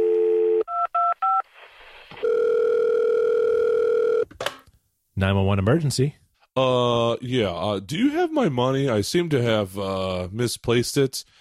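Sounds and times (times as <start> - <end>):
landline telephone dial tone: 0.0 - 1.4, 2.2 - 4.3
speech: 5.2 - 11.3.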